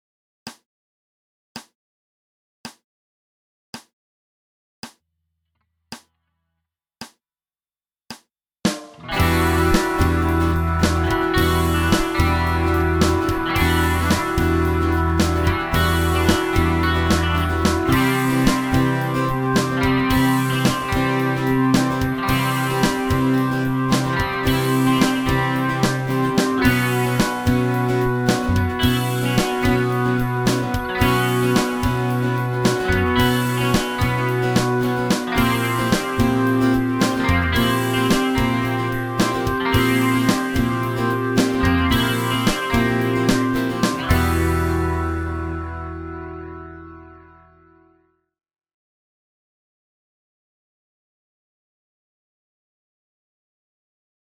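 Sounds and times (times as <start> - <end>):
backing track music: 9.1 - 47.4.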